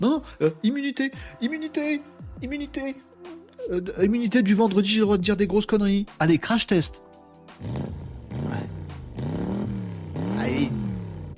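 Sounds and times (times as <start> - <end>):
speech: 0.0 - 8.7
voice imitating a car engine starting and revving: 7.6 - 11.3.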